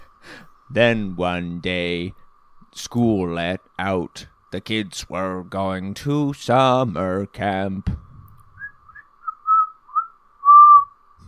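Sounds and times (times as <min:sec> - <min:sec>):
speech: 0:00.7 - 0:08.0
person whistling a tune: 0:08.6 - 0:10.9.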